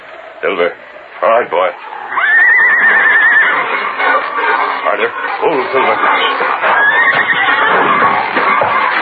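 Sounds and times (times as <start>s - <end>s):
speech: 0.4s - 2.0s, 4.4s - 8.4s
horse whinnying: 2.1s - 4.8s, 6.0s - 8.9s.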